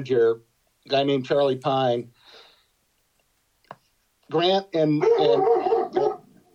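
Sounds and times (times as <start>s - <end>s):
speech: 0.0s - 2.4s, 4.3s - 5.6s
dog barking excitedly: 5.0s - 6.4s.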